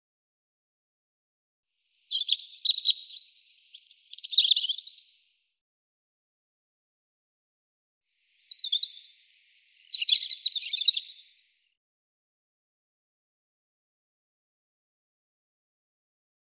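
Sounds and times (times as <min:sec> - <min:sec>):
European robin singing: 0:02.1 - 0:05.2, 0:08.3 - 0:11.5.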